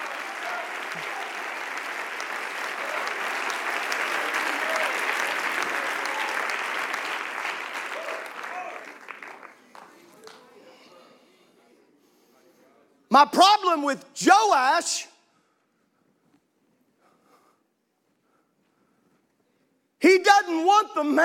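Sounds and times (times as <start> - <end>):
crowd clapping in a large room: 0.0 - 10.6
speech: 13.2 - 15.1, 21.0 - 21.2.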